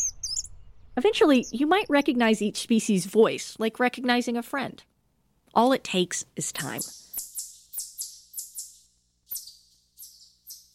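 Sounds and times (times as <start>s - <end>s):
speech: 1.0s - 4.9s, 5.5s - 7.0s
kingbird call: 6.8s - 10.7s.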